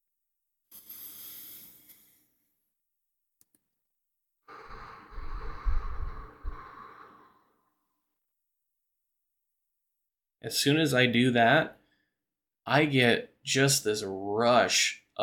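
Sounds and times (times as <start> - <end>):
slow breath drawn through the nose: 4.5 - 7.8
speech: 10.4 - 11.8, 12.7 - 15.2.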